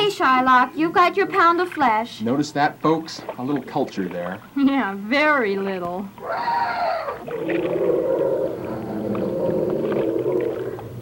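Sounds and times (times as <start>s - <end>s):
speech: 0.2s - 8.2s
elephant trumpeting: 6.2s - 11.0s.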